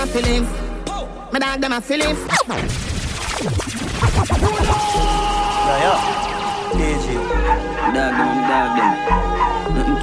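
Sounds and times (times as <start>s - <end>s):
speech: 0.2s - 0.6s, 1.3s - 10.0s
dogs barking and yipping: 7.2s - 10.0s.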